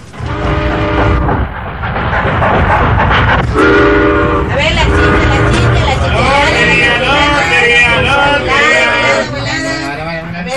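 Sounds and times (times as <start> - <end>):
train rumbling along rails: 0.0 - 10.5
faint crowd murmur: 4.1 - 10.5.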